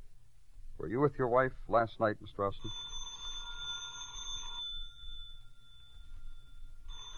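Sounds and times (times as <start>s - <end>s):
speech: 0.8s - 2.9s
telephone bell ringing: 2.6s - 7.1s.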